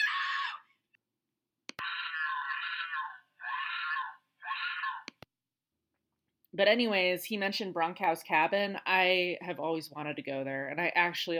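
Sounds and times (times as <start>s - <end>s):
person screaming in fright: 0.0s - 0.7s, 1.8s - 5.1s
sharp clicks: 5.0s - 5.4s
speech: 6.5s - 11.3s.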